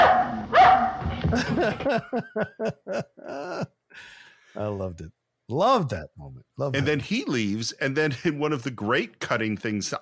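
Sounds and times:
dog barking: 0:00.0 - 0:01.0
laughter: 0:01.2 - 0:03.8
speech: 0:01.3 - 0:10.0.

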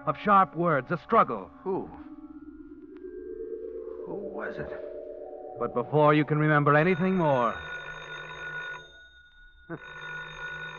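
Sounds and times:
speech: 0:00.0 - 0:02.1, 0:04.4 - 0:04.9, 0:05.6 - 0:07.7, 0:09.7 - 0:10.0
telephone ringing with an electronic trill: 0:02.1 - 0:10.7.

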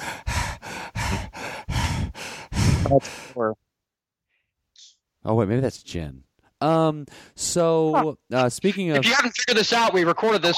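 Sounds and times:
person imitating a beagle panting: 0:00.0 - 0:03.4
speech: 0:02.8 - 0:03.7, 0:05.2 - 0:10.5.

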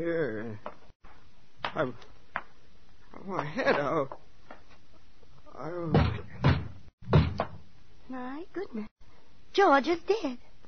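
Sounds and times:
speech: 0:00.0 - 0:00.8, 0:01.7 - 0:02.1, 0:03.2 - 0:04.2, 0:05.6 - 0:06.3, 0:08.1 - 0:08.9, 0:09.6 - 0:10.4
police pounding on a house door: 0:05.9 - 0:07.6.

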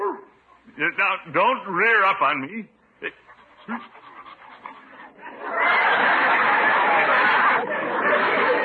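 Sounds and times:
speech: 0:00.8 - 0:04.0
large dog whimpering and snuffling: 0:03.2 - 0:05.3
laughter: 0:04.8 - 0:08.6.

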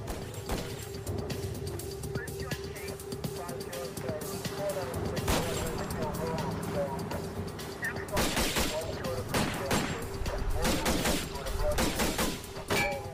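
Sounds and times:
noisy background: 0:00.0 - 0:13.1
voices: 0:01.8 - 0:13.1
rifle gunfire during a police stop of a pickup truck: 0:08.2 - 0:10.0, 0:10.6 - 0:12.5.

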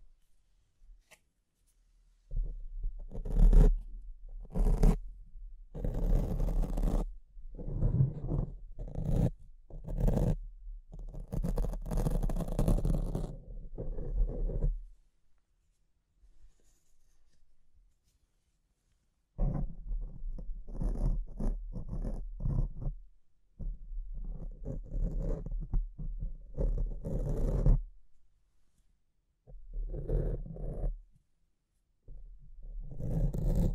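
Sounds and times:
scratching and rubbing against a microphone: 0:02.3 - 0:03.8, 0:04.4 - 0:05.0, 0:05.8 - 0:14.9, 0:19.4 - 0:23.0, 0:23.6 - 0:27.8, 0:29.7 - 0:31.0, 0:32.8 - 0:33.7.

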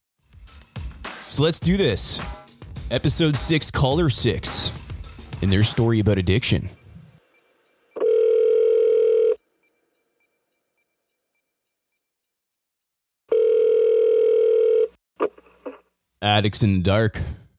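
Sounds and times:
speech: 0:01.3 - 0:04.8, 0:05.4 - 0:06.8, 0:16.3 - 0:17.4
telephone line tone for an outgoing call: 0:08.0 - 0:09.4, 0:13.3 - 0:14.9.

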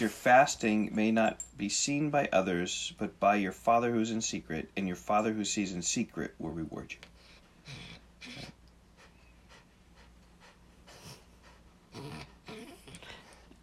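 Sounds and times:
speech: 0:00.0 - 0:07.1
faint steady hum: 0:00.0 - 0:13.6
dog panting and snuffling: 0:07.1 - 0:13.6.

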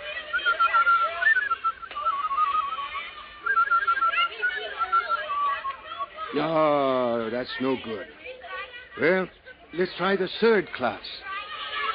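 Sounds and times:
person whistling a tune: 0:00.3 - 0:05.2
speech: 0:06.3 - 0:08.2, 0:09.0 - 0:11.3.

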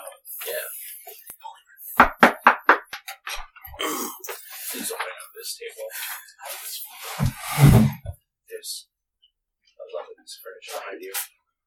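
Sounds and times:
quick light knocks on a door: 0:02.0 - 0:03.0.

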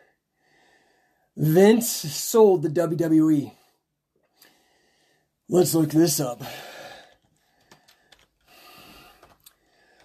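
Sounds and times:
heavy breathing: 0:00.0 - 0:01.4, 0:04.3 - 0:05.4, 0:06.4 - 0:10.0
speech: 0:01.4 - 0:03.6, 0:05.5 - 0:06.7.

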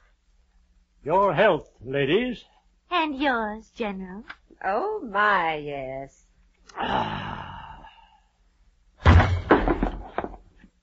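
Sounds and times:
speech: 0:01.0 - 0:07.4
breathy exhale: 0:06.7 - 0:08.4
general taken ill collapsing onto the floor: 0:09.0 - 0:10.6
clattering knocks: 0:09.1 - 0:10.5.

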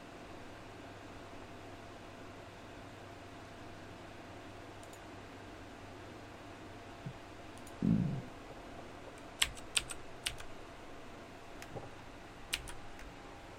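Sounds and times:
quiet hum: 0:00.0 - 0:13.5
computer keyboard keystrokes: 0:09.4 - 0:10.5, 0:12.5 - 0:13.1.

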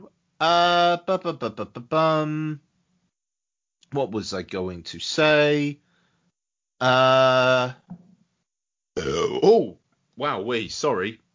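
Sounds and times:
speech: 0:00.4 - 0:02.7, 0:03.9 - 0:05.8, 0:06.8 - 0:08.0, 0:09.0 - 0:11.2
short wavering vocal sounds: 0:09.0 - 0:09.6
person burping: 0:09.0 - 0:09.7.

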